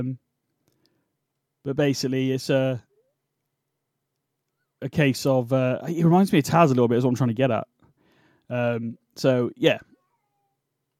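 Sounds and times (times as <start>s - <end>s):
speech: 0.0s - 0.2s, 1.6s - 2.9s, 4.8s - 7.7s, 8.5s - 9.9s
pet cat meowing: 10.0s - 10.6s.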